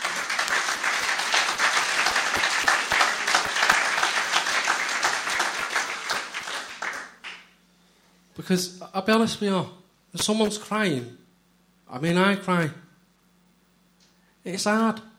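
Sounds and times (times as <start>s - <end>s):
audience applauding: 0.0s - 7.6s
speech: 8.5s - 11.2s, 11.9s - 12.8s, 14.4s - 15.1s.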